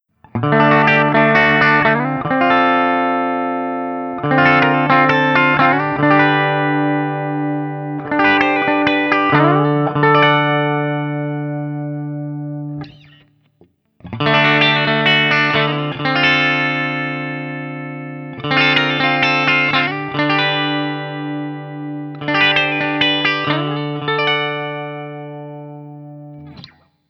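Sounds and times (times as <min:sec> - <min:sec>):
Guild S65D electric guitar through ODS100: 0:00.2 - 0:13.4, 0:14.0 - 0:27.0.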